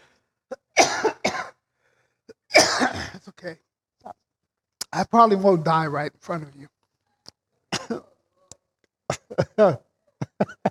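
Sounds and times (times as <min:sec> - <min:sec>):
person coughing on stage: 0:00.5 - 0:01.6, 0:02.3 - 0:03.2, 0:07.7 - 0:08.1, 0:09.1 - 0:10.6
speech: 0:03.4 - 0:03.7, 0:05.0 - 0:06.7, 0:09.4 - 0:10.6.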